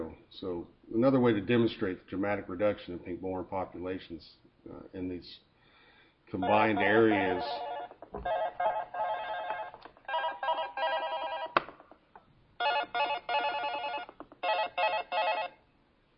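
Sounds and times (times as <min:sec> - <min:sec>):
speech: 0:00.4 - 0:05.5, 0:06.3 - 0:08.7
phone ringing during presentation: 0:06.4 - 0:11.6, 0:12.6 - 0:15.6.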